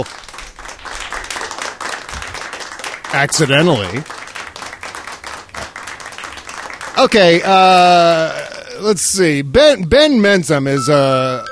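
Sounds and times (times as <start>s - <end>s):
speech: 0.0s - 0.2s, 3.1s - 4.2s, 7.0s - 11.5s
round of applause from a crowd: 0.0s - 8.3s.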